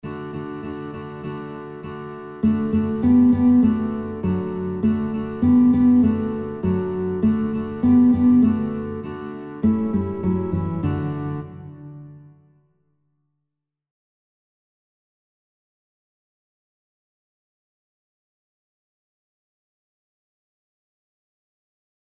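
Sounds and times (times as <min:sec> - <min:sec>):
guitar playing: 0:00.0 - 0:12.6.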